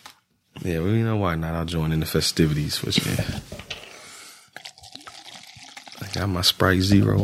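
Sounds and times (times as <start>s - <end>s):
speech: 0.6s - 3.6s, 6.2s - 7.2s
liquor pouring into a glass: 4.5s - 6.8s
liquor splashing and dripping: 4.6s - 6.4s.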